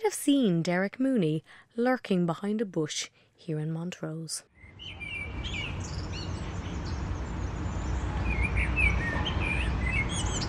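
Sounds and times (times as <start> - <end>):
speech: 0.0 - 5.7
blackbird singing: 4.6 - 10.4.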